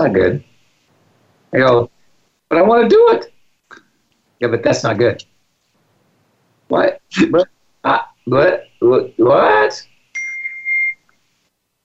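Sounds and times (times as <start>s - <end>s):
speech: 0.0s - 0.5s, 1.5s - 1.9s, 2.5s - 3.8s, 4.4s - 5.3s, 6.7s - 9.9s
single bright electronic ding like a phone notification: 10.2s - 11.0s.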